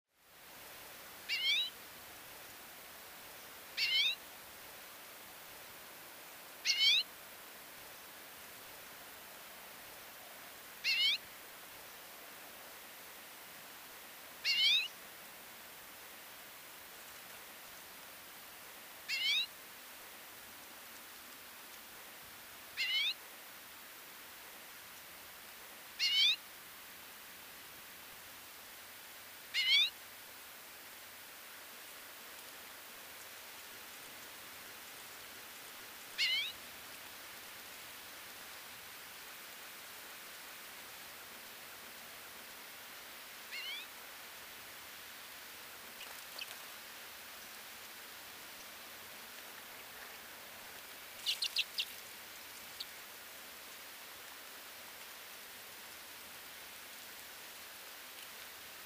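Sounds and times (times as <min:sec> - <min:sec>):
Common Redpoll Acanthis flammea finch: 0:01.3 - 0:01.7, 0:03.8 - 0:04.2, 0:06.6 - 0:07.1, 0:10.8 - 0:11.2, 0:14.4 - 0:14.9, 0:19.1 - 0:19.5, 0:22.8 - 0:23.2, 0:26.0 - 0:26.4, 0:29.6 - 0:30.0, 0:36.2 - 0:36.6, 0:43.5 - 0:43.9, 0:46.0 - 0:46.6, 0:51.2 - 0:53.0.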